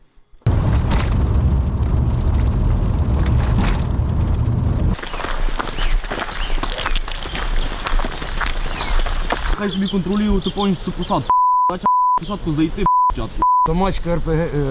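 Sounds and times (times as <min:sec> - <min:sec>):
rustling movement: 0:00.0 - 0:09.6
crackly background: 0:00.0 - 0:11.2
shelling explosions in a war zone: 0:00.5 - 0:05.0
hurried footsteps: 0:00.5 - 0:10.8
speech: 0:09.6 - 0:14.6.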